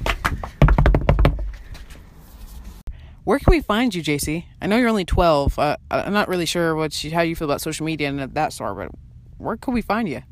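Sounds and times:
knocking on a door: 0.5 - 1.5
speech: 3.3 - 10.2.

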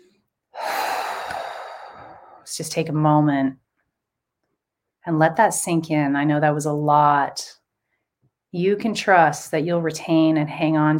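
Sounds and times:
deep inhale during a guided spiritual practice: 0.6 - 2.5
speech: 2.5 - 3.6, 5.0 - 7.6, 8.5 - 10.9.

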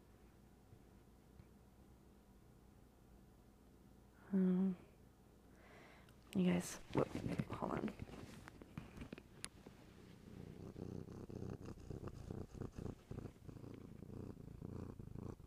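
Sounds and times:
speech: 4.3 - 4.8, 6.4 - 8.4
pet cat purring: 6.8 - 15.4.

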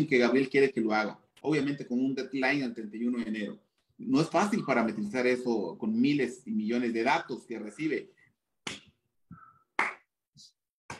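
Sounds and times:
speech: 0.0 - 8.8
sharp hand claps: 8.6 - 10.1.

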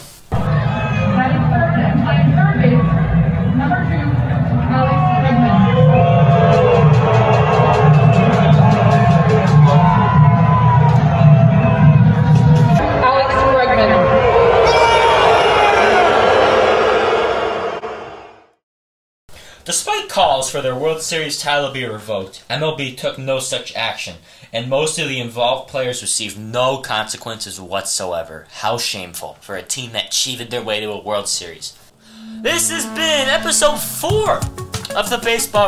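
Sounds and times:
large baseball stadium crowd of fans roaring and booing: 0.3 - 18.6
speech: 20.5 - 35.6.

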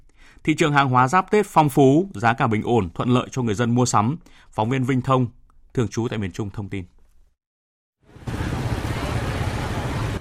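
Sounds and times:
speech: 0.4 - 7.0
trucks rumbling as they bring goods to a wholesale market in Vietnam: 8.1 - 10.1
bustle of crowds at a busy wholesale market in Vietnam: 8.2 - 10.1.

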